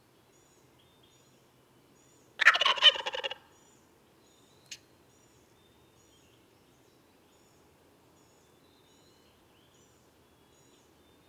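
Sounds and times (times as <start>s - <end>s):
Meleagris gallopavo wild turkey gobbling: 2.4s - 3.4s.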